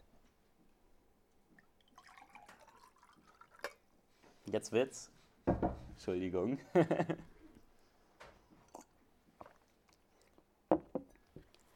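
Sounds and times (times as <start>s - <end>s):
water pouring into a glass: 1.6s - 3.9s
speech: 4.5s - 7.3s.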